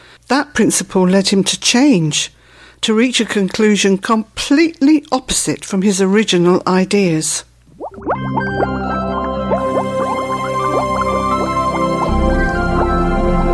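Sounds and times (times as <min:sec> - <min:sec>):
speech: 0:00.3 - 0:09.0
liquid bubbling: 0:07.6 - 0:13.4.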